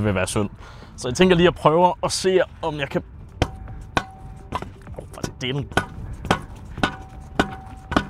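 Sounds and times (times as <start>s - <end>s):
speech: 0.0s - 3.2s, 5.4s - 5.9s
hammer blows driving something into the ground: 3.4s - 8.0s.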